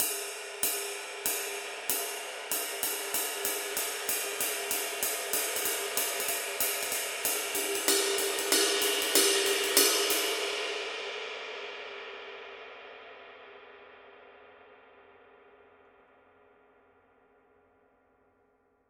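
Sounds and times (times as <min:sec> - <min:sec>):
22 inch Paiste Masters Dark Ride cymbal pattern: 0:00.0 - 0:11.0.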